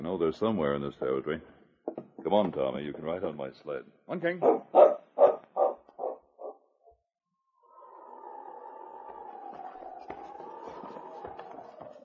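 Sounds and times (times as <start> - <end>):
speech: 0.0 - 1.6, 2.2 - 4.9
husky dog barking: 4.4 - 6.6
husky dog howling: 7.6 - 12.0.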